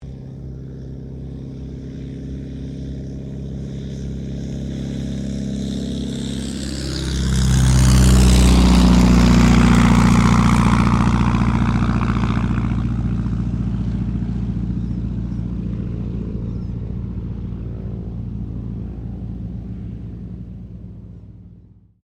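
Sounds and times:
1940s de Havilland DH82A Tiger Moth biplane taking off: 0.0 - 22.0.

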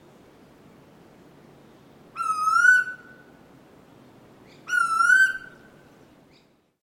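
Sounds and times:
quiet hiss: 0.0 - 6.8
bird whistled calls at Noosa: 2.2 - 3.1, 4.5 - 5.6.

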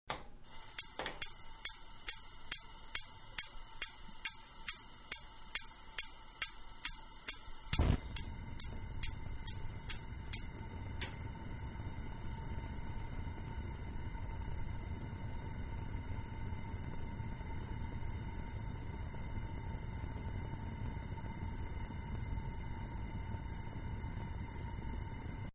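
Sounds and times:
kitchen gas stove self-start igniting: 0.1 - 25.5.

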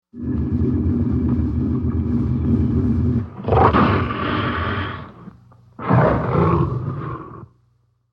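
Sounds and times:
tiger growl: 0.0 - 7.6
tiger hiss: 1.8 - 7.5.

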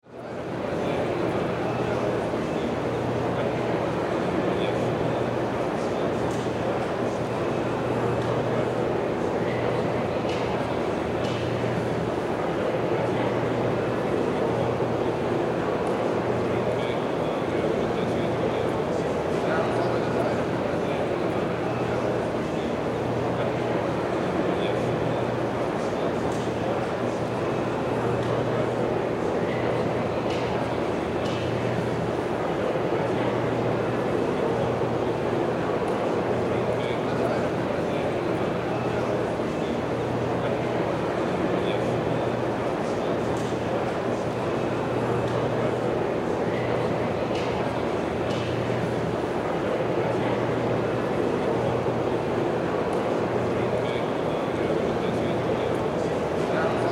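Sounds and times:
convention center crowd walla: 0.0 - 56.9.

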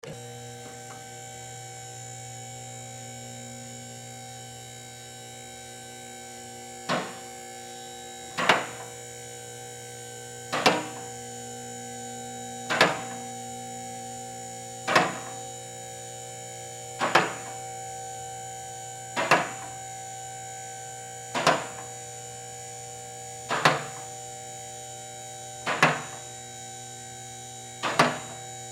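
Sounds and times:
auto shop hydraulic car hoist raising: 0.0 - 2.7, 5.5 - 9.1, 9.9 - 11.5, 12.1 - 16.0, 16.9 - 17.7, 19.1 - 19.8, 21.3 - 22.1, 23.4 - 24.1, 25.6 - 26.3, 27.8 - 28.5.

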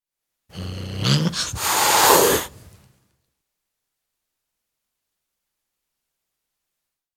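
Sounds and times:
tom cat growling and hissing: 0.5 - 2.8.

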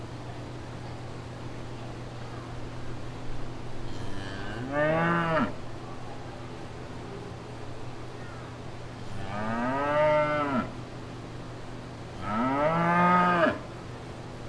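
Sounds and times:
cow lowing at fair grounds: 3.9 - 5.6, 9.1 - 10.7, 12.2 - 13.6.

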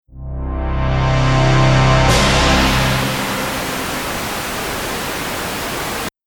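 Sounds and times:
trailer hit: 1.2 - 3.7
white noise: 2.2 - 6.1.

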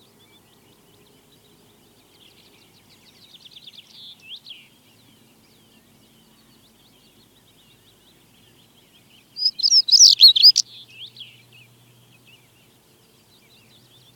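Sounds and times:
chaffinch singing: 0.0 - 14.1
stonechat singing: 9.4 - 10.6.

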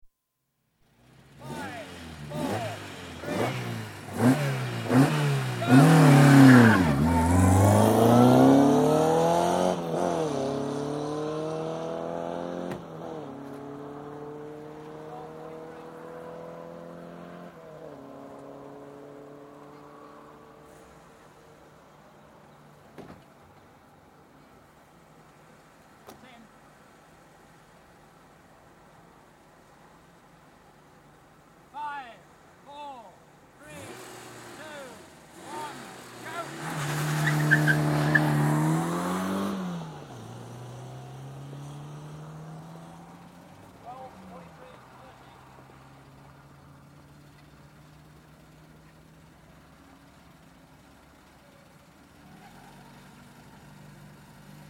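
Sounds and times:
rally car engines at the start of a race: 0.8 - 54.6.

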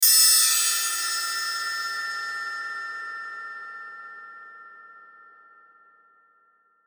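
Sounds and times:
chimes hit with reverb: 0.0 - 6.6.

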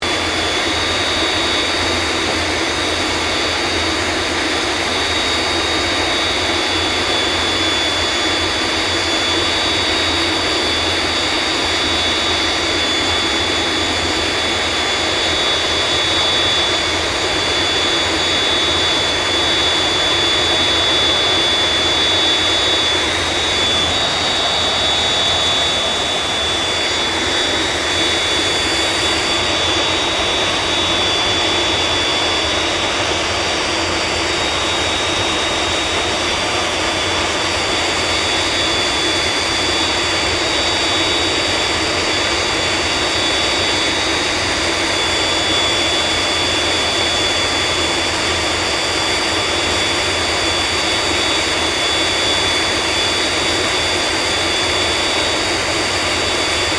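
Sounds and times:
CA-27 Sabre jet aircraft idling: 0.0 - 56.7.

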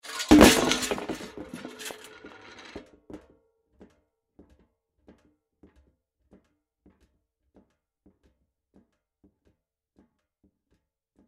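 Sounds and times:
metal objects falling and crashing: 0.0 - 2.8.

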